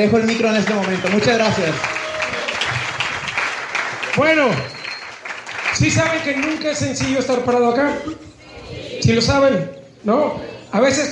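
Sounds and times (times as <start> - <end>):
speech: 0.0 - 2.0, 4.2 - 4.8, 5.8 - 8.3, 9.0 - 11.1
audience clapping: 0.0 - 7.8.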